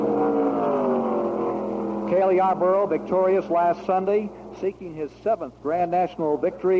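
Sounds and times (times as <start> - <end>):
pack of 3,800-pound stock cars racing in a draft down a backstretch: 0.0 - 4.4
speech: 2.1 - 6.7.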